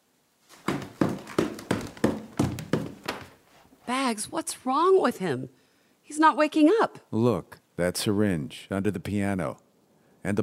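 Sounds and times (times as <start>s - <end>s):
woman knocking hard on a door: 0.7s - 3.2s
speech: 4.1s - 9.6s, 10.2s - 10.4s.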